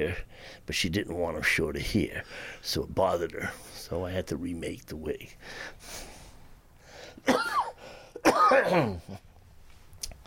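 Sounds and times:
speech: 0.0 - 6.1, 8.2 - 9.3
breathy sounds: 0.3 - 0.7, 2.2 - 2.6, 5.4 - 7.2, 7.8 - 8.2
person clearing throat: 7.2 - 9.2
person coughing: 7.2 - 9.2.

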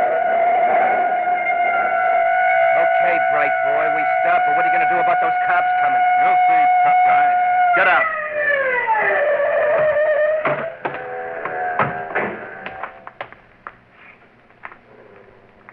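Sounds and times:
police car siren wailing: 0.0 - 13.1
clicks and knocks: 9.7 - 13.8.

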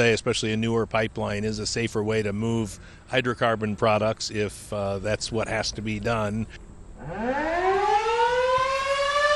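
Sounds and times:
speech: 0.0 - 7.6
civil defense warning siren in Washtenaw County sounding its monthly test: 7.0 - 9.3.

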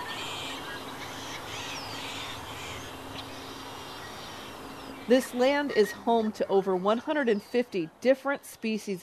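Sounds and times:
crow-like caws in a desert wetland: 0.0 - 4.6
ducks quacking in a desert wetland pond: 0.0 - 7.4
steady wash of a desert wetland: 0.0 - 8.4
speech: 5.1 - 9.0.

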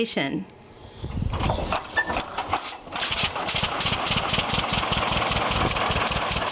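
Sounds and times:
speech: 0.0 - 1.2
two-cylinder tractor engine putt-putting: 1.3 - 6.5.

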